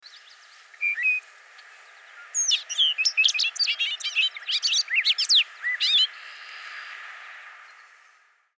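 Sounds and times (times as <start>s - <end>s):
bobolink song: 0.0s - 8.2s.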